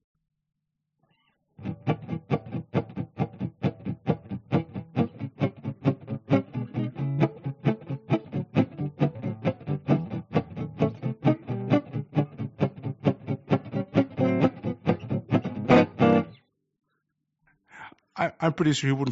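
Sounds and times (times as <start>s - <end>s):
gypsy jazz rhythm guitar chords heavily muted without bass or microphone: 1.6s - 16.3s
speech: 18.4s - 19.1s.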